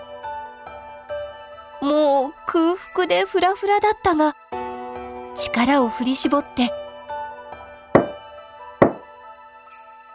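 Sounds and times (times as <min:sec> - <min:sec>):
speech: 0:01.8 - 0:04.5, 0:05.4 - 0:06.8
knocking on the wooden door of a house: 0:08.0 - 0:08.2, 0:08.8 - 0:09.1.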